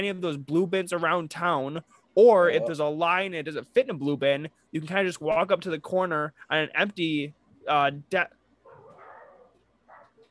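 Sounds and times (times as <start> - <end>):
speech: 0.0 - 8.4
faint hum: 0.0 - 10.2
dog barking: 8.7 - 10.2.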